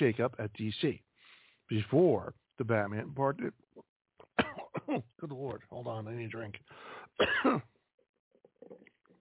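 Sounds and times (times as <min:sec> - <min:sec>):
speech: 0:00.0 - 0:01.1, 0:01.7 - 0:03.9, 0:04.9 - 0:07.7
single harsh cough: 0:04.3 - 0:05.1, 0:07.1 - 0:07.8.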